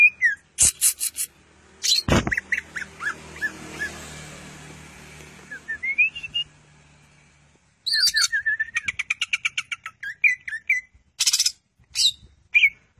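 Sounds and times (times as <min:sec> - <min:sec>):
Greater green leafbird whistling and chattering song: 0:00.0 - 0:04.0, 0:05.4 - 0:06.6, 0:07.8 - 0:12.8.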